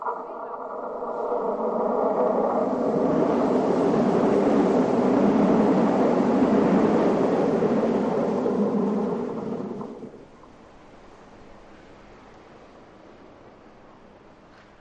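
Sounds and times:
train rushing past at high speed through a tunnel: 0.0s - 10.4s.

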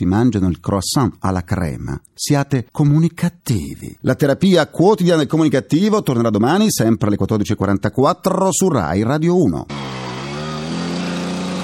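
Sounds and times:
speech: 0.0s - 10.0s
small scooter engine humming and revving: 9.7s - 11.6s.

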